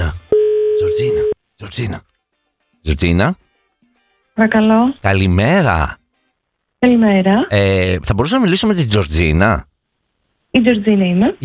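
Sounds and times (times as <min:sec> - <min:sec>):
telephone line tone on a rotary-dial phone: 0:00.3 - 0:01.4
speech: 0:01.0 - 0:02.1, 0:02.8 - 0:03.4, 0:04.4 - 0:06.0, 0:06.8 - 0:09.7, 0:10.5 - 0:11.4.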